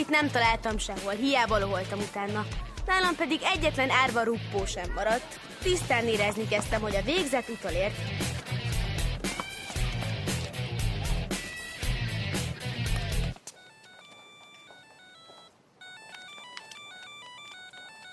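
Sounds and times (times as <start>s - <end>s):
speech: 0.0s - 8.4s
loud thumping music: 0.4s - 13.4s
electronic telephone ringtone with bright beeping melodic pattern: 13.6s - 18.1s.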